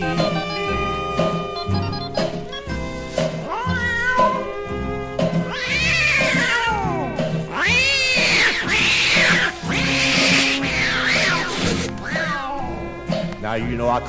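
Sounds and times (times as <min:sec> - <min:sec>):
steady musical backing: 0:00.0 - 0:14.0
tomcats fighting, yowling and meowing: 0:03.4 - 0:12.9
speech: 0:13.6 - 0:14.0.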